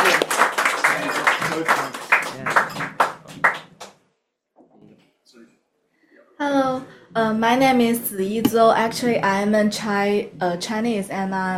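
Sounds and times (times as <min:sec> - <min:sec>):
audience at a poetry reading in Cork applauding: 0:00.0 - 0:03.9
speech: 0:07.4 - 0:11.5.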